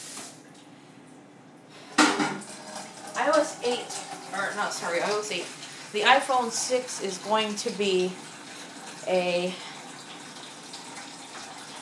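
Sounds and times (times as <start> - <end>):
water running from a tap into a pet's water bowl: 0.0 - 0.4, 1.8 - 11.7
speech: 3.4 - 8.3, 9.0 - 9.7.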